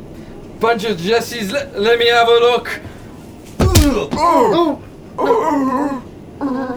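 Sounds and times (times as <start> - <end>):
speech: 0.6 - 2.9, 3.8 - 6.7
someone banging on a stuck door: 3.6 - 4.4.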